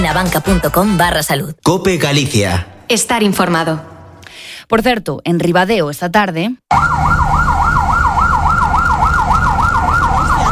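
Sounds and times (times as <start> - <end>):
speech: 0.0 - 3.9, 4.6 - 7.2
fire engine siren of firefighters going to a fire in a graphic arts shop: 6.7 - 10.5.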